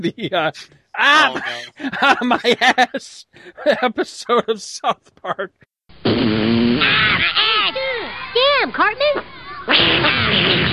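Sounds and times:
speech: 0.0s - 7.8s, 8.4s - 10.7s
laughter: 1.2s - 4.5s
voice imitating a fart with a low buzzy raspberry: 6.0s - 7.6s, 9.7s - 10.7s.

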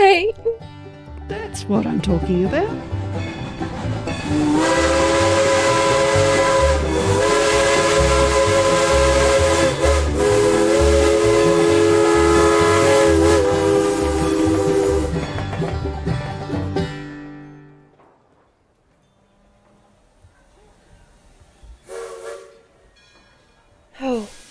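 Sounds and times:
chugging rhythmic rail noise: 1.2s - 24.4s
speech: 1.6s - 3.3s, 4.3s - 5.0s
steam train whistle: 4.2s - 15.4s, 21.7s - 22.9s
faint hisses and clanks: 18.0s - 24.4s.

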